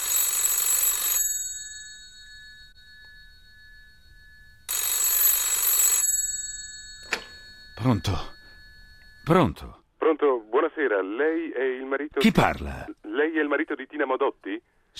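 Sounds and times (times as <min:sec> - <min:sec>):
landline telephone ringing with a trilling electronic bell: 0:00.0 - 0:12.0
speech: 0:07.8 - 0:08.3, 0:09.3 - 0:14.9.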